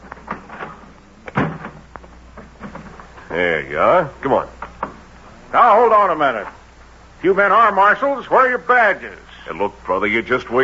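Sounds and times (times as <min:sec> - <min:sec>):
quiet room hum: 0:00.0 - 0:10.6
door clunk and creak: 0:00.1 - 0:03.3
speech: 0:03.3 - 0:04.6, 0:05.5 - 0:06.6, 0:07.2 - 0:10.6.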